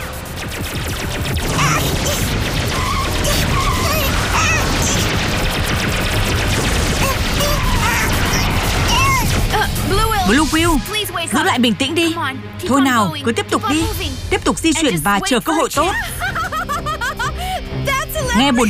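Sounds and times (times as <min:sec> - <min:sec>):
powerful cartoon laser blast fired during an attack: 0:00.0 - 0:11.5
speech: 0:10.3 - 0:16.2, 0:18.3 - 0:18.6
laughter: 0:15.7 - 0:18.6.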